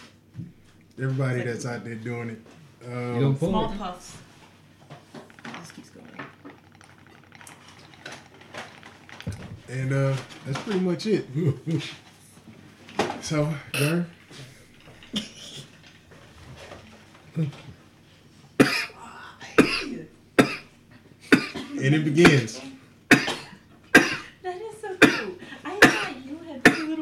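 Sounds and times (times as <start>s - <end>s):
speech: 1.0s - 4.3s, 9.7s - 12.1s, 13.3s - 14.5s, 17.4s - 17.7s, 21.8s - 22.7s
harsh coughing fits: 18.6s - 19.0s, 19.6s - 20.7s, 21.3s - 22.5s, 23.1s - 24.4s, 25.0s - 27.0s.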